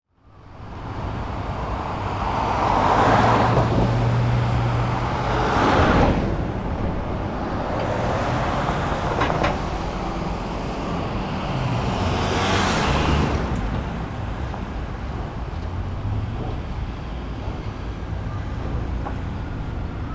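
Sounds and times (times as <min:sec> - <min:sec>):
traffic at an intersection: 0:00.2 - 0:20.1.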